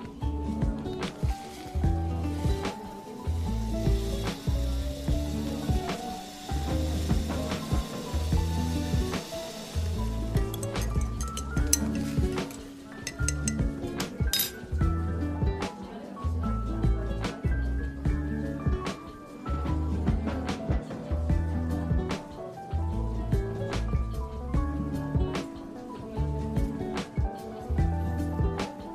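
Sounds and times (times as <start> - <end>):
coffee shop music with a walking low bass line and mellow chords: 0.0 - 28.9
faint chatter: 0.0 - 28.9
soft sizzling hiss: 0.8 - 14.2
light clicks and clinks: 10.5 - 14.7.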